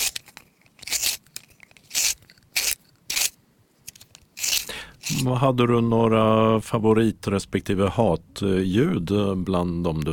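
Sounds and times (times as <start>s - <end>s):
pencil being sharpened in a sharpener: 0.0s - 5.3s
speech: 5.2s - 10.1s.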